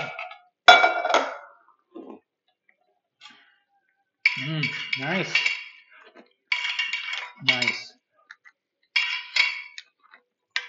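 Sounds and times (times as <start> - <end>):
ice cubes clinking and rattling in a bottle: 4.3 - 10.6
speech: 4.4 - 5.6.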